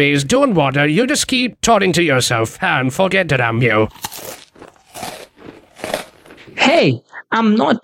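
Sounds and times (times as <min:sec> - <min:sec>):
speech: 0:00.0 - 0:06.0, 0:06.6 - 0:07.8
crunchy munching of food: 0:03.9 - 0:06.6.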